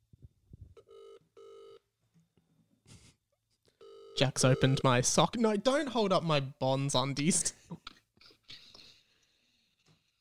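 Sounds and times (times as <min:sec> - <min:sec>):
phone line ringback tone on an outgoing call: 0:00.8 - 0:01.8, 0:03.8 - 0:04.9
speech: 0:04.2 - 0:07.6.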